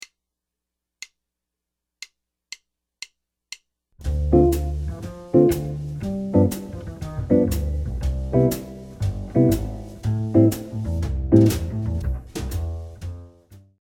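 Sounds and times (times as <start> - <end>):
jazz chord progression: 4.0 - 13.4.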